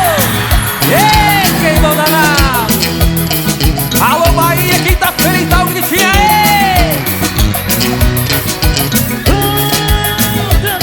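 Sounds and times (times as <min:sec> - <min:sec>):
crowd of women screaming and whooping: 0:00.0 - 0:02.7
loud live music with a steady thumping bass beat: 0:00.0 - 0:10.8.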